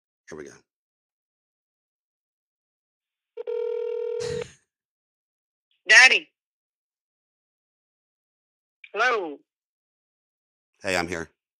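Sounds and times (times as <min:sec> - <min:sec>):
speech: 0:00.3 - 0:00.7, 0:05.9 - 0:06.3, 0:09.0 - 0:09.4, 0:10.8 - 0:11.4
electronic phone ringing tone of an audio call: 0:03.4 - 0:04.4.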